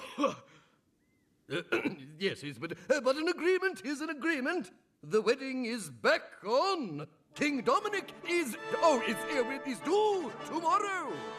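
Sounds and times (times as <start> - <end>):
page boy coughing: 0.0 - 0.5, 1.5 - 2.1
speech: 0.2 - 0.5, 1.5 - 11.3.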